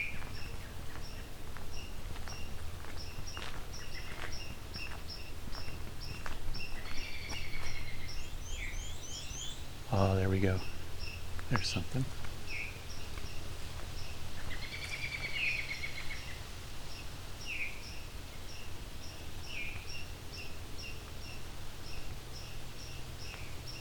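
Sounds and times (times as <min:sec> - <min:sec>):
black-and-white warbler song: 0:00.0 - 0:23.7
low rumble: 0:00.0 - 0:23.7
insect buzzing drone: 0:06.0 - 0:23.7
speech: 0:10.0 - 0:10.7, 0:11.5 - 0:12.3.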